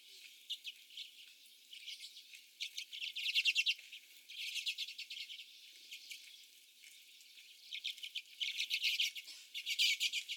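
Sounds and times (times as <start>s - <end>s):
common redpolls twittering: 0.0s - 10.3s.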